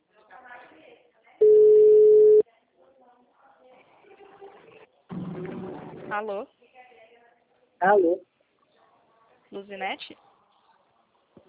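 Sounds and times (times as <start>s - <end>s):
telephone ringback tone while a call is placed: 1.4s - 2.4s
speech: 6.1s - 6.6s, 7.8s - 8.3s, 9.5s - 10.2s.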